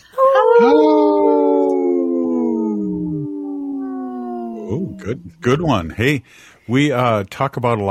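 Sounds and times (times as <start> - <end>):
wolves howling in a chorus: 0.2 - 5.6
speech: 0.6 - 0.9, 4.9 - 7.8.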